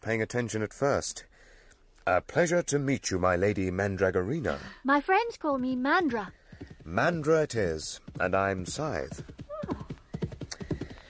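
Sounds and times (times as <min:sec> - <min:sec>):
speech: 0:00.0 - 0:01.3, 0:02.0 - 0:09.4
horse hooves clip-clopping in a walking gait: 0:06.1 - 0:11.0.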